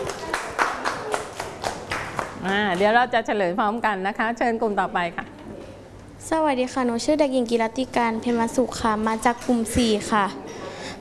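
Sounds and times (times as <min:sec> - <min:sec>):
children in a class clapping for a group: 0:00.0 - 0:02.9
speech: 0:02.4 - 0:05.2, 0:06.3 - 0:10.4.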